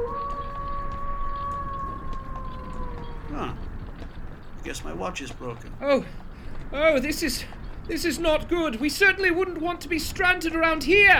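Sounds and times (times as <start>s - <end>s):
wolf howling: 0.0s - 4.0s
speech: 4.6s - 11.1s.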